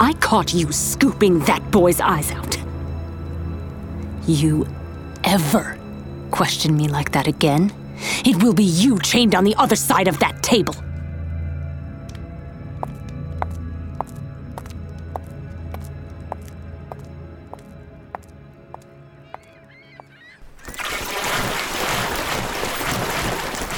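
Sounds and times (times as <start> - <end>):
speech: 0.1 - 2.6, 4.2 - 10.8
wooden boat dragged up onto the shore: 20.4 - 23.7.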